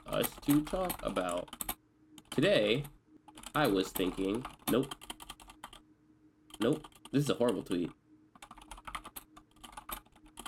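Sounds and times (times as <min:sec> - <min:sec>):
typing on a computer keyboard: 0:00.1 - 0:02.4, 0:03.3 - 0:05.8, 0:06.5 - 0:07.7, 0:08.4 - 0:10.4
speech: 0:00.2 - 0:01.6, 0:02.4 - 0:03.0, 0:03.6 - 0:05.1, 0:06.6 - 0:08.0.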